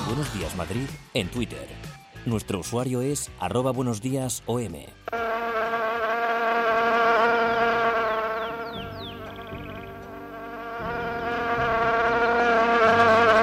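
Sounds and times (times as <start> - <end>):
speech: 0.1 - 5.0
housefly buzzing: 5.1 - 13.4.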